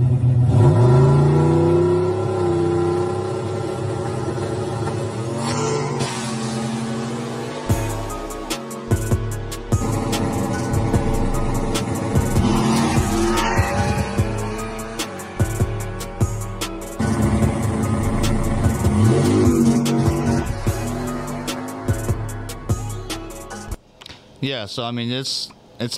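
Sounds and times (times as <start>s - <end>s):
race car engine revving through hard accelerations and gear changes: 0.0s - 23.6s
speech: 24.6s - 25.9s.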